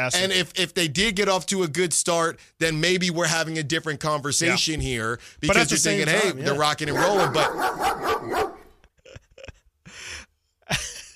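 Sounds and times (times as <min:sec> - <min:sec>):
speech: 0:00.0 - 0:08.5
dog barking: 0:06.9 - 0:08.8.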